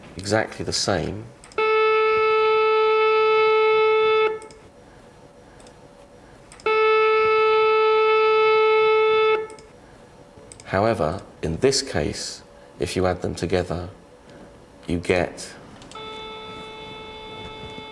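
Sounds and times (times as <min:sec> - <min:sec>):
speech: 0:00.2 - 0:01.4, 0:10.7 - 0:14.0, 0:14.9 - 0:15.6
two identical sustained saxophone tones out of phase: 0:01.6 - 0:04.4, 0:06.7 - 0:09.5, 0:16.0 - 0:17.9.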